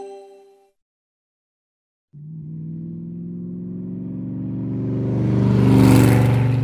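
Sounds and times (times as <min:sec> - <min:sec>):
car engine rumble as the car drives by: 0:02.1 - 0:06.6.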